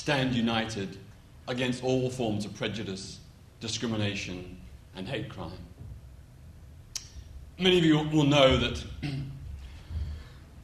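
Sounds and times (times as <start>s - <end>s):
speech: 0.0s - 5.7s, 7.6s - 9.4s
speaker with a very bad cough coughing during a speech: 9.0s - 9.5s.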